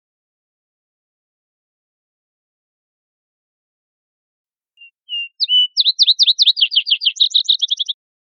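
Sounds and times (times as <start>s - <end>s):
vesper sparrow song with whistles and bright trill: 4.8s - 8.0s.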